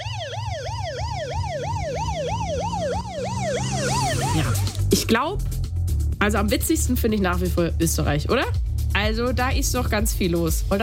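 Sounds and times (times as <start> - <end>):
American emergency vehicle siren yelping: 0.0 - 5.0
speech: 4.4 - 5.6, 6.2 - 10.8.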